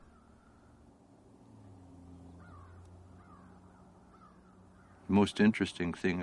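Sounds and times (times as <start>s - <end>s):
birds cawing: 0.0s - 5.6s
traffic rumble: 0.0s - 6.2s
speech: 5.1s - 6.2s.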